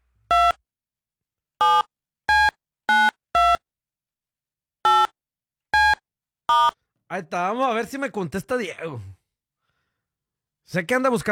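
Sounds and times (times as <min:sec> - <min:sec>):
telephone keypad dialing tones: 0:01.6 - 0:03.6, 0:04.9 - 0:05.1, 0:05.8 - 0:06.8
speech: 0:06.5 - 0:09.2, 0:10.7 - 0:11.3.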